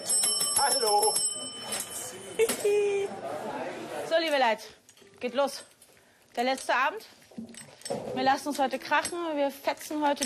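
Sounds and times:
small hand bell ringing with a bright metallic tone: 0:00.0 - 0:02.7
speech: 0:00.6 - 0:05.7, 0:06.4 - 0:10.2.

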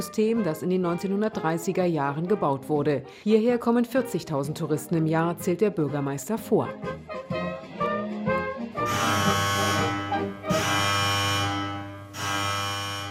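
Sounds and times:
speech: 0:00.0 - 0:07.4
fortress electric alarm buzzer: 0:08.8 - 0:13.1.

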